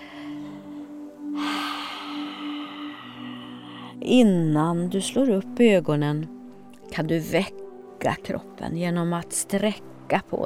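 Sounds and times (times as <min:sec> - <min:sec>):
deep breaths taken while waking from a guided relaxation: 0:00.0 - 0:04.0
speech: 0:04.0 - 0:06.4, 0:07.0 - 0:10.4.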